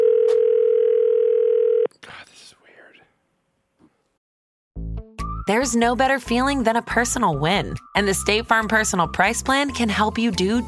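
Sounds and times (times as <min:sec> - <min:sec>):
telephone dial tone while placing a call: 0:00.0 - 0:01.9
speech: 0:05.5 - 0:10.6.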